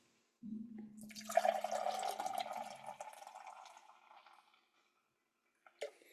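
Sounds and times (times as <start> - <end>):
beer pouring into a pint glass: 1.0 - 4.6.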